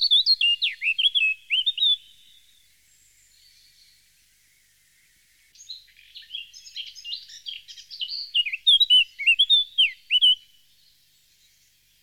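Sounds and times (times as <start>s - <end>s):
Eurasian blackcap fluting whistled song: 0.0s - 2.5s, 5.6s - 10.5s.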